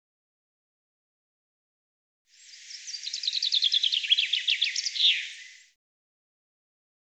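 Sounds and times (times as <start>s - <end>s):
common chaffinch song: 2.3s - 5.8s.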